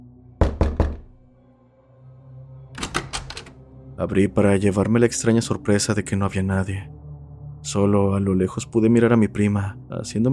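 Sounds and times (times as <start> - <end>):
insistent knocking on a door: 0.4 - 1.2
speech: 4.0 - 7.0, 7.6 - 10.3.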